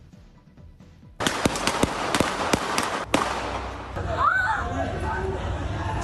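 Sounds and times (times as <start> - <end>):
gunfire from an armed clash outside an apartment building in Istanbul: 1.2 - 4.0
steady noise: 1.2 - 6.0
voices: 4.0 - 6.0.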